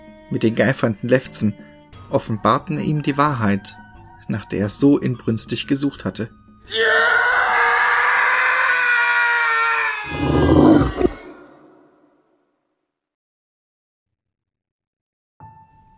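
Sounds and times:
speech: 0.3 - 7.3
person screaming and crying: 6.7 - 11.8.

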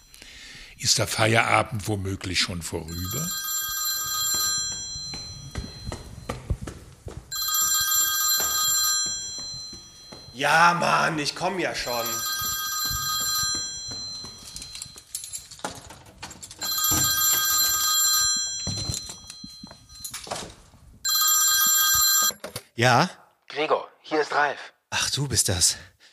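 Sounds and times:
speech: 0.8 - 3.4, 10.4 - 12.3, 22.8 - 23.2, 24.4 - 26.0
telephone bell ringing in an apartment: 2.9 - 6.3, 7.3 - 11.2, 11.8 - 15.1, 16.6 - 22.4.

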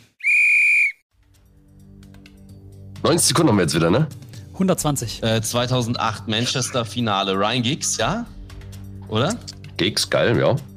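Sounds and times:
whistle blast signalling the start of a quiz timer: 0.1 - 1.0
speech: 3.0 - 8.4, 9.1 - 10.7.

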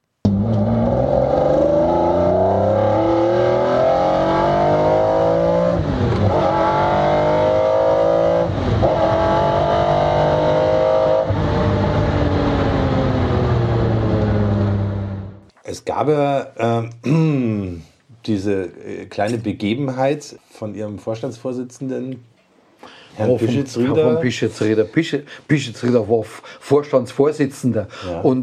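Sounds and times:
F1 sports car engine roaring under acceleration on a test drive: 0.3 - 15.5
speech: 16.0 - 17.2, 18.3 - 22.3, 23.2 - 28.4.

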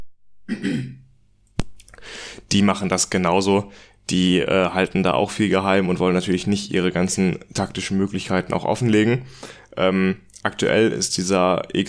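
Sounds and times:
raspy throat clearing: 0.5 - 1.1
short breathy exhale: 2.0 - 2.5, 3.7 - 4.0, 9.3 - 9.7
speech: 2.5 - 11.8.

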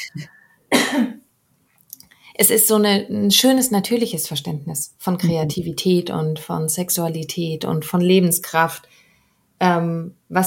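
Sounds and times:
quiet breathing: 0.0 - 0.7, 2.0 - 2.4, 8.8 - 9.6
loud harsh cough: 0.7 - 1.2
speech: 2.4 - 9.0, 9.6 - 10.4.

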